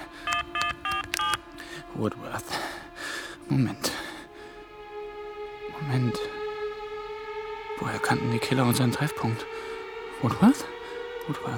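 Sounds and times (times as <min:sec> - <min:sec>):
mobile phone keypad tones as someone dials a call: 0:00.3 - 0:01.4
speech: 0:02.0 - 0:02.6, 0:03.5 - 0:04.0, 0:05.8 - 0:06.3, 0:07.8 - 0:09.6, 0:10.2 - 0:11.5.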